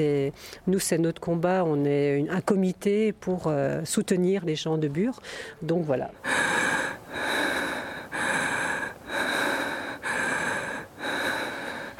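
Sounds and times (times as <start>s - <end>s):
speech: 0.0s - 7.3s
deep inhaling and exhaling in a breathing exercise: 5.2s - 5.6s, 6.2s - 11.9s.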